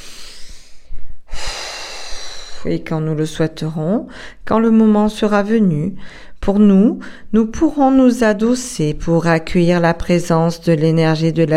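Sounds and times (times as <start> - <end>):
slow inhaling and exhaling breaths during a guided relaxation exercise: 0.0 - 2.7, 4.1 - 4.4
speech: 2.6 - 11.5.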